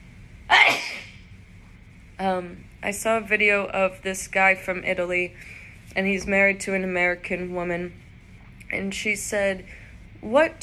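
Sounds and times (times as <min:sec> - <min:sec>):
sneeze: 0:00.5 - 0:01.2
speech: 0:02.2 - 0:08.0, 0:08.7 - 0:10.6.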